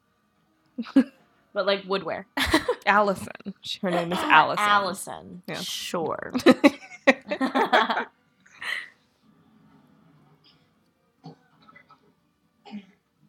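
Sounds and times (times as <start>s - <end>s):
speech: 0.8s - 8.1s
harsh coughing: 3.9s - 4.5s
laughter: 6.4s - 8.1s
raspy throat-clearing: 10.4s - 13.0s.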